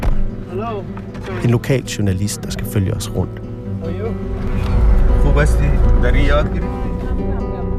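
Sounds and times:
speech: 0.5 - 7.3
road traffic rumble heard from inside a moving car: 3.4 - 7.7.

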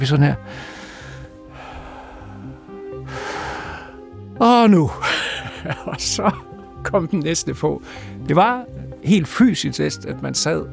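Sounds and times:
speech: 0.0 - 0.8, 4.4 - 10.7
person's loud rhythmic breathing used to time sound editing: 0.4 - 4.2, 7.8 - 8.2
laughter: 5.0 - 6.4.

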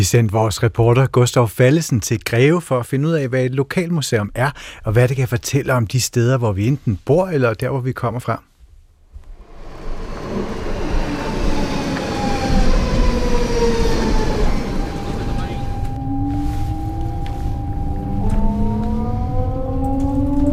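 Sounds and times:
speech: 0.0 - 8.5
commuter S-train electric motor whine: 9.3 - 20.5
commuter S-train rumbling on rails from Copenhagen Central Station toward Greve Denmark: 9.3 - 20.5.

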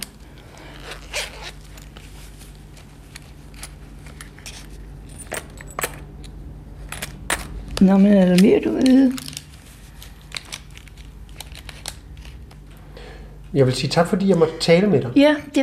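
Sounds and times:
low steady hum: 0.0 - 15.6
coins clinking as they are handled and scooped up: 3.5 - 6.2, 6.8 - 9.4
speech: 7.8 - 9.2, 13.6 - 15.6.

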